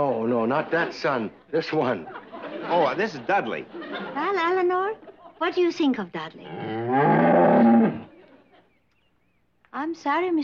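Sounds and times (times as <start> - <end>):
speech: 0.0 - 7.7, 9.8 - 10.4
laughter: 0.2 - 5.5, 7.9 - 8.8
cow giving a long loud low moo: 6.5 - 8.1.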